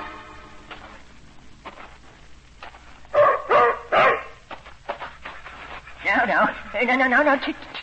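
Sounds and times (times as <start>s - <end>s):
German shepherd dog barking: 3.1s - 4.4s
speech: 6.8s - 7.8s.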